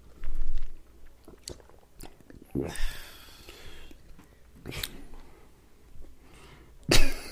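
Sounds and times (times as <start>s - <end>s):
wet swallowing and mouth noises: 0.2s - 5.2s
person gulping liquor from a cup into the mic: 0.4s - 4.0s.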